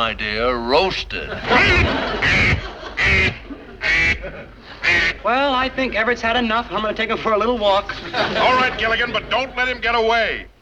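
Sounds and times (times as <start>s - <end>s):
speech: 0.0s - 10.5s
faint hum: 0.0s - 10.6s
laughter: 1.2s - 10.4s
duck quacking: 1.4s - 5.3s.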